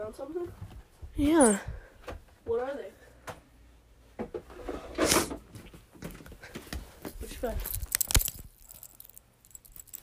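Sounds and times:
speech: 0:00.1 - 0:03.0, 0:07.4 - 0:07.8
bunch of keys jangling: 0:07.6 - 0:10.0.

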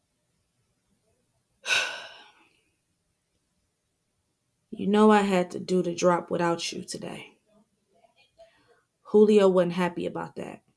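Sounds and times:
deep breath: 0:01.6 - 0:02.8
speech: 0:04.8 - 0:07.3, 0:09.1 - 0:10.6.

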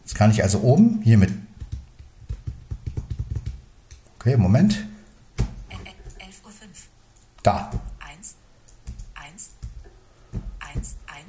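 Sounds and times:
speech: 0:00.2 - 0:01.5, 0:04.2 - 0:04.9, 0:07.4 - 0:07.8
typing on a Windows computer keyboard connected to an iPhone: 0:01.6 - 0:03.6.

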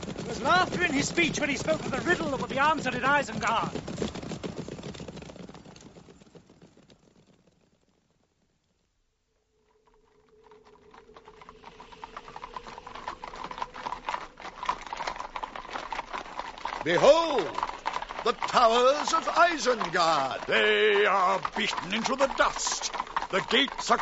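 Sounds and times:
hooves of weary horses carrying men clip-clopping: 0:00.0 - 0:24.0
speech: 0:00.4 - 0:04.2, 0:16.9 - 0:24.0
low sustained drone: 0:09.5 - 0:14.6.

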